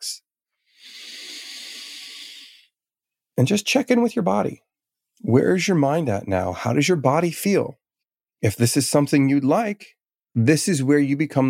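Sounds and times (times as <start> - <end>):
slow controlled exhale during a breathing exercise: 0.6 - 2.7
speech: 3.4 - 7.8, 8.4 - 11.4.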